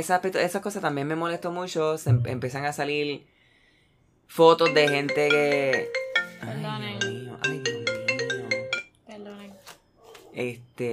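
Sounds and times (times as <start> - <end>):
speech: 0.0 - 3.4, 4.3 - 7.0, 10.4 - 10.9
phone ringtone: 4.6 - 8.9.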